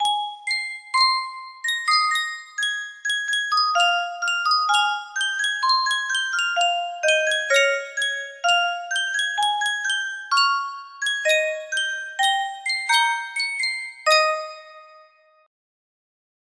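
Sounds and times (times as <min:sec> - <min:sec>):
custom tune music box melody: 0:00.0 - 0:15.3.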